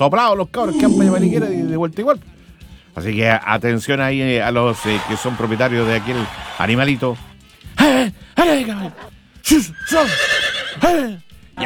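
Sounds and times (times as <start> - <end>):
speech: 0.0 - 2.3, 3.0 - 11.6
horse neighing: 0.6 - 1.9, 9.7 - 11.0.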